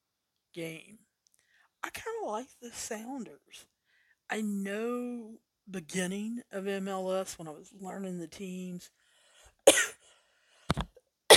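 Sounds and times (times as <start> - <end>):
speech: 0.6 - 1.1, 1.8 - 3.7, 4.3 - 9.0
person coughing: 9.7 - 10.0.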